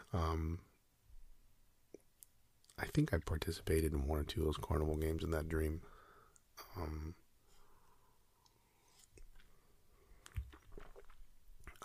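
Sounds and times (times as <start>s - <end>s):
speech: 0.1s - 0.7s, 2.8s - 6.0s, 6.6s - 7.2s
person slurping a sip of coffee: 10.2s - 11.8s
person swallowing quietly: 10.2s - 11.8s.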